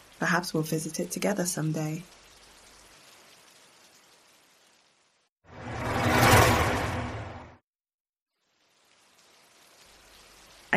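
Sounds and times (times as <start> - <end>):
speech: 0.2 - 2.2
vehicle passing on a wet road in the rain in South London at night: 5.5 - 7.6
low rumble: 5.6 - 7.6.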